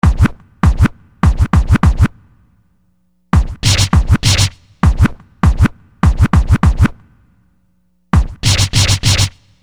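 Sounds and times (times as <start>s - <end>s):
hip-hop record scratching: 0.0s - 2.2s, 3.4s - 7.0s, 8.2s - 9.5s.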